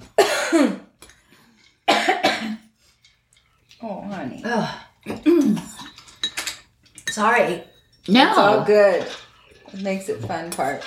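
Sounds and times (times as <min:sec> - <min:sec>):
coughing fit of harsh raspy coughs: 0:00.2 - 0:00.9, 0:01.9 - 0:02.6
speech: 0:00.5 - 0:00.8, 0:04.2 - 0:05.2, 0:07.2 - 0:10.8.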